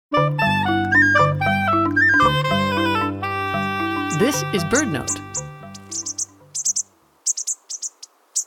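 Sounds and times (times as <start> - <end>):
low sustained musical tones: 0.1 - 7.2
Bushtit calls: 3.5 - 8.4
speech: 4.2 - 5.6.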